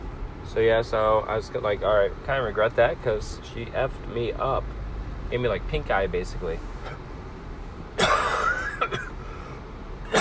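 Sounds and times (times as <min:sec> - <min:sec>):
speech: 0:00.5 - 0:07.0
person coughing harshly: 0:08.0 - 0:09.2.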